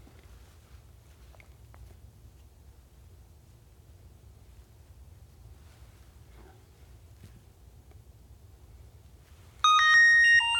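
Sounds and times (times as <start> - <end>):
phone ringtone electronic melody: 9.6 - 10.5.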